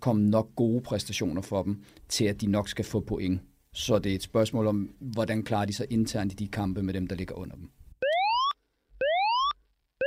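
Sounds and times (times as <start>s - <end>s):
speech: 0.0s - 7.8s
electronic alarm siren whooping in rising tones: 8.0s - 10.0s.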